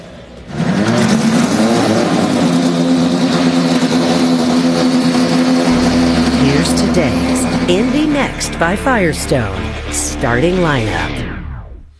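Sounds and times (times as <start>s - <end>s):
several race car engines starting and revving: 0.0s - 11.4s
speech: 8.3s - 11.2s.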